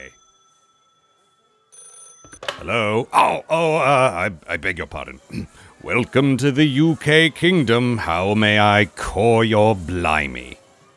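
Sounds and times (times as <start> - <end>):
telephone bell ringing: 0.0 - 2.7
speech: 2.3 - 10.6
laughter: 2.5 - 10.6.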